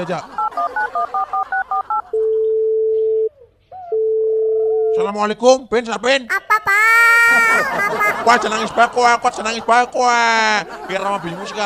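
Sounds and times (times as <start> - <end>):
speech: 0.0 - 0.4, 5.0 - 6.4, 7.6 - 11.6
laughter: 0.0 - 2.4, 6.3 - 11.6
telephone keypad dialing tones: 0.4 - 3.3
long steady loud telephone tone: 0.4 - 5.0.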